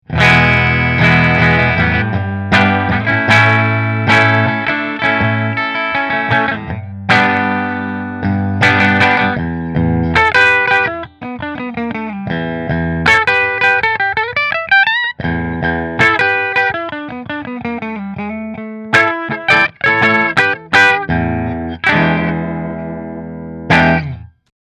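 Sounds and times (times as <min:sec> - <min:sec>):
double cutaway electric guitar with flame maple top in position five: 0:00.0 - 0:24.5.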